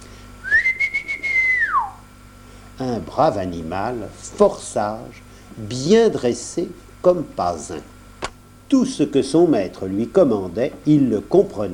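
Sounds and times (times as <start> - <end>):
person whistling at daybreak to call a dog: 0.4 - 2.0
speech: 2.8 - 7.9, 8.7 - 11.7.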